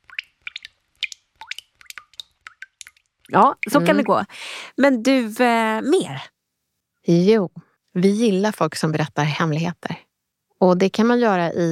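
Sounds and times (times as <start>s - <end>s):
water dripping: 0.0s - 4.3s
speech: 3.3s - 6.4s, 7.0s - 10.0s, 10.6s - 11.7s.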